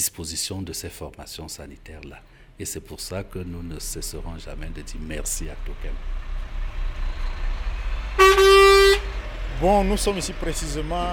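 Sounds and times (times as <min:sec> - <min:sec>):
speech: 0:00.0 - 0:06.3, 0:09.6 - 0:11.1
garbage compactor truck engine idling at a market: 0:02.3 - 0:11.1
garbage compactor truck horn blast: 0:07.8 - 0:09.4.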